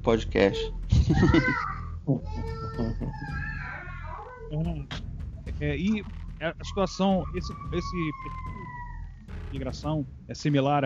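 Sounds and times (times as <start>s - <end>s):
speech: 0.0s - 3.5s, 4.5s - 5.0s, 5.6s - 8.6s, 9.5s - 10.8s
laughter: 0.9s - 1.6s
young child crying: 1.2s - 4.4s, 6.6s - 9.0s.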